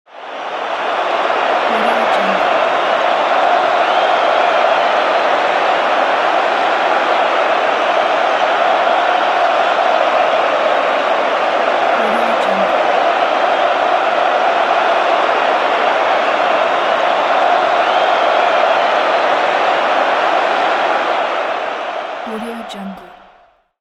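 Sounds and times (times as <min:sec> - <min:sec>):
soccer game crowd: 0:00.2 - 0:17.7, 0:18.3 - 0:23.4.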